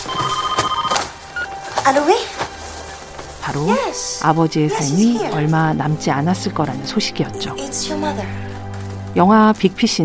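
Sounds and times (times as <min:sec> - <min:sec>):
telephone ringing in a rapid trilling burst: 0:00.0 - 0:02.1
speech: 0:01.8 - 0:02.4, 0:03.5 - 0:08.5, 0:09.2 - 0:10.0.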